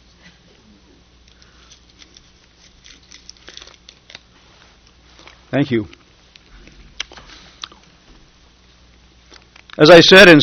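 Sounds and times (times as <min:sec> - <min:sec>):
paper bag crinkling and rustling as it is opened: 0:02.0 - 0:04.2
speech: 0:05.5 - 0:06.0, 0:09.8 - 0:10.4.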